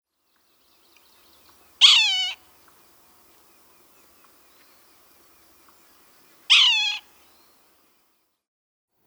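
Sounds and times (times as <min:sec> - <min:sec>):
red-naped sapsucker nasal harsh mewing calls: 0:00.8 - 0:08.0.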